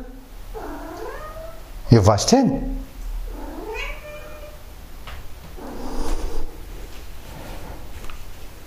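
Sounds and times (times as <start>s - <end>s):
cat meowing: 0.5s - 1.7s, 3.3s - 4.6s
speech: 1.9s - 2.8s.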